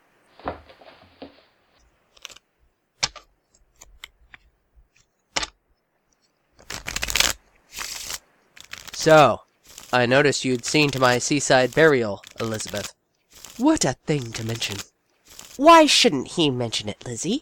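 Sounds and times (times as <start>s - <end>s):
playing cards being shuffled in riffles: 0.4s - 2.4s, 3.0s - 5.6s, 6.6s - 15.9s
playing cards snapping and tapping: 2.2s - 2.4s, 3.0s - 5.6s, 6.6s - 10.0s, 10.6s - 13.6s, 14.2s - 15.6s
speech: 9.0s - 12.9s, 13.6s - 14.9s, 15.6s - 17.3s.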